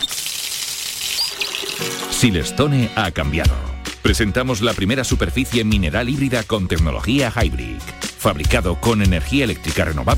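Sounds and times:
water drip ping: 0:00.0 - 0:02.1
water running from a tap: 0:00.0 - 0:02.4
speech: 0:02.2 - 0:10.1.

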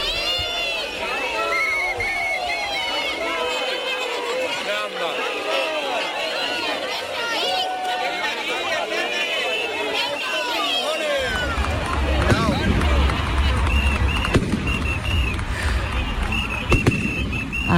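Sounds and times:
large outdoor crowd roaring: 0:00.0 - 0:17.7
firework rockets bursting during a street parade: 0:14.1 - 0:17.7.

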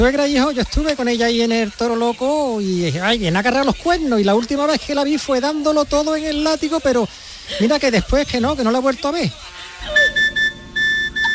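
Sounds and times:
speech: 0:00.0 - 0:10.0
mobile phone ringing with a repeating electronic tone: 0:09.9 - 0:11.3.

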